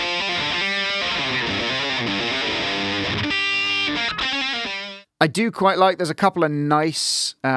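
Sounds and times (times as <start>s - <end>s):
electric guitar through a gritty saturated distortion pedal: 0.0s - 5.1s
speech: 5.2s - 7.5s.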